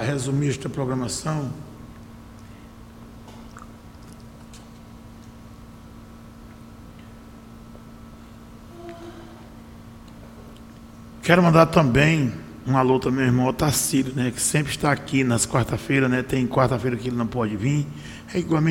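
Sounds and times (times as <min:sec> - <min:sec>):
speech: 0:00.0 - 0:01.8, 0:11.2 - 0:18.6
steady low hum: 0:00.0 - 0:18.6
person sipping water: 0:03.2 - 0:04.8.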